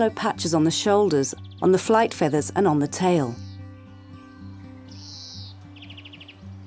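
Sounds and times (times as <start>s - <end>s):
speech: 0.0s - 3.4s
greenfinch song: 0.0s - 6.6s.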